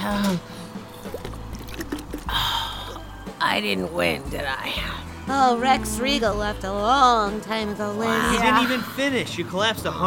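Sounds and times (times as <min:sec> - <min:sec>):
speech: 0:00.0 - 0:00.6, 0:03.5 - 0:10.0
water splashing and trickling onto a towel: 0:00.0 - 0:03.4
water gushing as it pours: 0:00.2 - 0:03.1.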